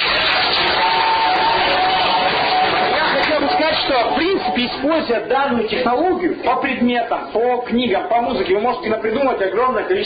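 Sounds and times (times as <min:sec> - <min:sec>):
audience clapping: 0:00.0 - 0:04.8
speech: 0:04.7 - 0:10.0.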